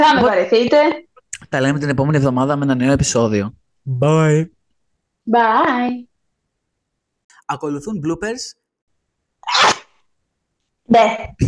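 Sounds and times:
speech: 0.0s - 4.6s, 5.3s - 6.1s, 7.5s - 8.6s, 10.9s - 11.4s
loud abrupt barking sneeze: 9.5s - 9.9s.

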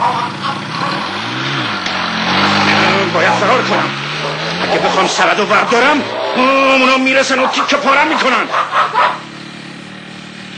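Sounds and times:
motorcycle engine revving during a turn: 0.0s - 10.5s
laughter: 2.4s - 9.2s
speech: 5.0s - 9.0s.

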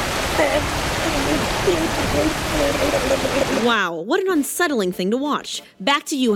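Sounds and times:
water gushing from a fire hydrant: 0.0s - 3.7s
faint voices murmuring: 0.4s - 3.6s
speech: 0.4s - 6.3s.

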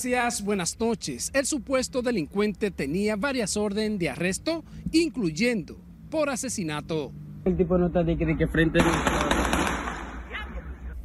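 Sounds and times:
speech: 0.0s - 9.3s
noisy commotion: 8.6s - 10.8s
volley of sharp gunshots: 8.8s - 10.3s.

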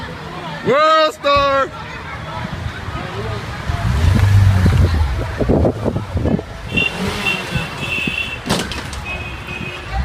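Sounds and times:
speech: 0.6s - 1.8s
car engines rumbling and revving outdoors in a parking lot: 1.4s - 10.0s
wind noise: 3.6s - 10.0s
sharp crunching impact of cars ramming each other: 6.8s - 9.2s
thuds of cars ramming each other: 8.4s - 9.2s.

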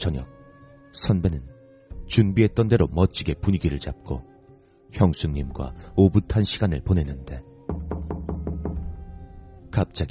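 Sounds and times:
speech: 0.0s - 1.5s, 2.1s - 4.3s, 4.9s - 7.5s, 9.8s - 10.0s
knocking on a guesthouse door: 7.7s - 9.0s.

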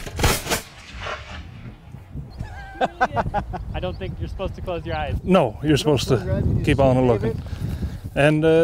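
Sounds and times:
sharp booming gunshots outdoors: 0.0s - 1.9s
laughter: 2.4s - 3.8s
speech: 2.8s - 8.6s.

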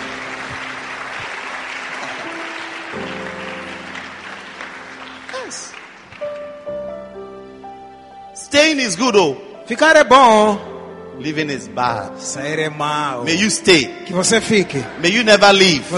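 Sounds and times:
large crowd applauding: 0.0s - 7.0s
sustained keyboard or organ notes: 0.0s - 15.9s
speech: 8.6s - 15.9s.

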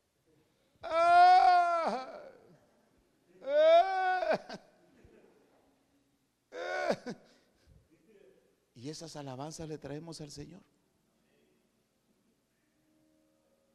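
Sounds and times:
voice imitating moaning whimpering complaints in wavering groans: 0.8s - 2.6s, 3.4s - 4.6s, 6.5s - 7.2s
speech: 8.9s - 10.8s.

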